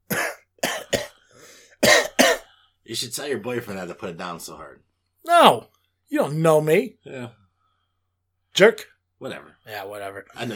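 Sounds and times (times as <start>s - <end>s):
raspy throat clearing: 0.0s - 1.2s, 1.8s - 2.5s
person coughing with something stuck in their throat: 0.1s - 1.2s, 1.8s - 2.5s
speech: 2.9s - 7.4s, 8.6s - 10.5s.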